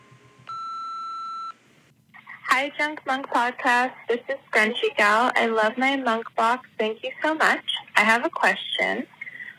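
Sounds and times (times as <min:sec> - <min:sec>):
answering machine beep: 0:00.5 - 0:01.6
speech: 0:02.6 - 0:09.1.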